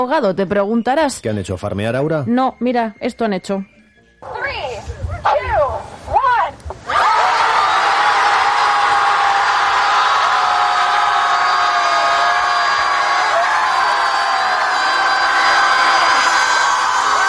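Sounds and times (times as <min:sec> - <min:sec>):
speech: 0:00.0 - 0:05.9
crowd of people screaming at the ocean: 0:06.8 - 0:17.2.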